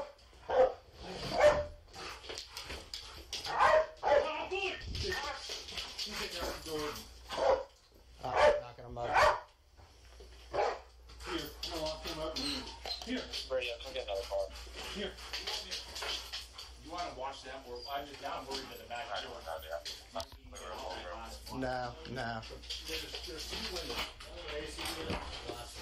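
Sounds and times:
police dog barking: 0:00.0 - 0:01.8, 0:03.4 - 0:04.5, 0:07.3 - 0:09.5, 0:10.5 - 0:10.9
people talking: 0:04.2 - 0:07.1, 0:08.2 - 0:09.3, 0:11.2 - 0:16.2, 0:16.8 - 0:25.8.

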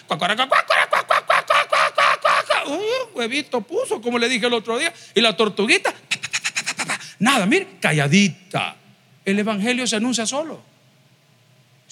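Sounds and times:
speech: 0:00.1 - 0:01.3, 0:02.7 - 0:06.0, 0:07.2 - 0:10.7
voice imitating a clucking hen: 0:00.3 - 0:02.8, 0:06.1 - 0:07.1.

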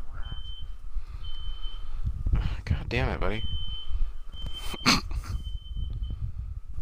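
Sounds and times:
fire alarm high-pitched electronic beeping: 0:00.1 - 0:02.1, 0:03.2 - 0:06.4
speech: 0:02.9 - 0:03.6
laughter: 0:04.6 - 0:05.4.

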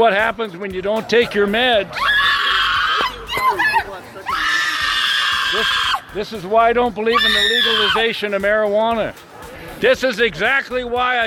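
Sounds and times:
speech: 0:00.0 - 0:02.2, 0:05.5 - 0:11.2
woman screaming at the top of her lungs on a college campus: 0:02.0 - 0:06.2, 0:07.1 - 0:08.0.

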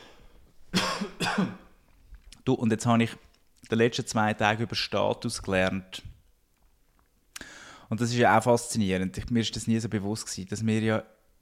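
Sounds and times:
forceful coughs: 0:00.7 - 0:01.7
speech: 0:01.4 - 0:01.6, 0:02.5 - 0:06.1, 0:07.9 - 0:11.2.

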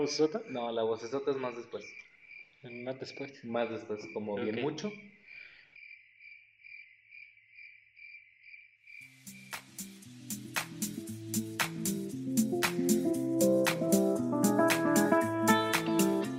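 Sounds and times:
speech: 0:00.0 - 0:05.2
crickets chirping in a steady pulsing trill: 0:00.4 - 0:11.6
music with sharp percussive hits: 0:09.2 - 0:16.3.

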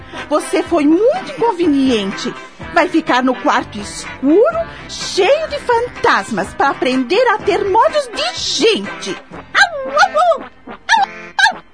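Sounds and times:
speech: 0:00.3 - 0:10.5
dog barking and yelping: 0:09.4 - 0:11.7.

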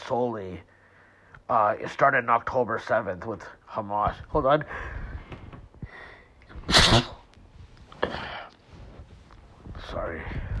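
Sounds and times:
speech: 0:00.1 - 0:00.8, 0:01.5 - 0:05.0, 0:06.7 - 0:07.2
soft sneeze or sniff: 0:06.5 - 0:07.3
quiet rustling: 0:06.5 - 0:10.2
sneeze: 0:06.6 - 0:07.3.

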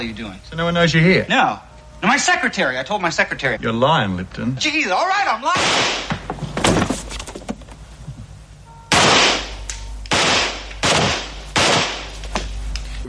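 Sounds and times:
speech: 0:00.0 - 0:06.2
real gun firing blank rounds for a film scene: 0:05.5 - 0:06.2, 0:08.9 - 0:12.2.

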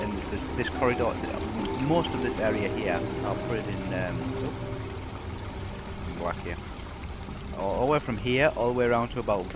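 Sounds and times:
boiling water flowing down steps: 0:00.0 - 0:09.5
speech: 0:00.4 - 0:04.7, 0:06.2 - 0:06.7, 0:07.6 - 0:09.5.

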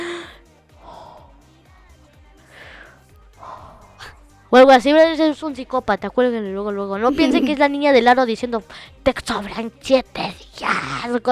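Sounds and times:
voice imitating heavy raspy breathing: 0:00.0 - 0:01.5, 0:02.4 - 0:04.2
speech: 0:04.5 - 0:11.3.

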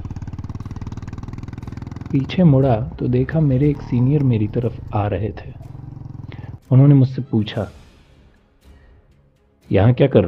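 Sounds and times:
Bullet motorcycle engine thumping: 0:00.0 - 0:06.6
speech: 0:02.1 - 0:05.8, 0:06.7 - 0:07.8, 0:09.7 - 0:10.2.

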